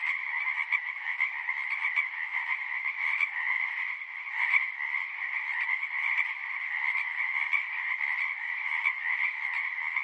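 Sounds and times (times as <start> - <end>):
marsh frog chorus croaking: 0.0 - 10.0.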